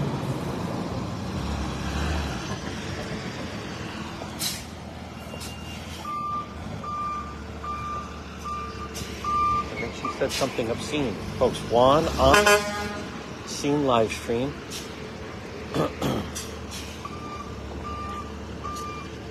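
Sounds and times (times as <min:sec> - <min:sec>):
heavy tow truck engine rumbling on a public street: 0:00.0 - 0:19.2
tow truck reversing beeps: 0:05.2 - 0:10.3, 0:17.0 - 0:19.2
speech: 0:10.2 - 0:13.0, 0:13.6 - 0:14.9.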